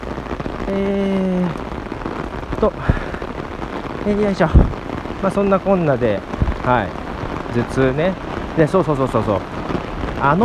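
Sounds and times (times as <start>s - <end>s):
rain falling on a strange-weather day: 0.0s - 10.4s
speech: 0.7s - 1.6s, 2.6s - 3.0s, 4.0s - 7.0s, 7.6s - 9.5s, 10.2s - 10.4s.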